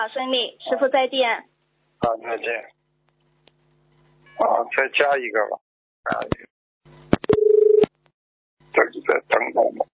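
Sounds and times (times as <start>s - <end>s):
speech: 0.0s - 2.8s, 4.4s - 7.0s, 8.8s - 9.9s
electronic telephone ringback tone over a line: 7.4s - 7.8s.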